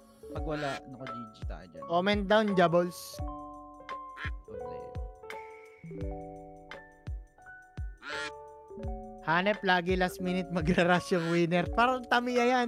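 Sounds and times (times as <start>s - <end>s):
bright tonal musical backing with thumping low notes: 0.0s - 12.6s
speech: 0.3s - 3.4s, 8.8s - 12.6s
loud nasal duck quacking: 0.4s - 0.9s, 4.2s - 4.4s, 8.0s - 8.3s, 10.9s - 11.7s.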